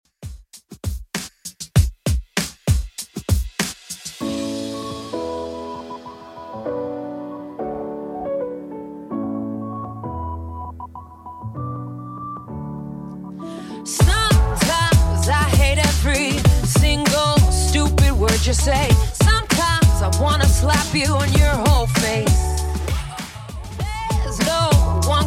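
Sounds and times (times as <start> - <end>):
drum loop at 100 bpm: 0.0 - 6.8, 14.0 - 25.2.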